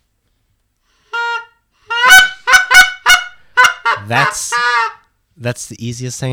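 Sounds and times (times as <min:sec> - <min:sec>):
Canada goose honking: 0:01.1 - 0:05.1
speech: 0:04.1 - 0:04.7, 0:05.4 - 0:06.3.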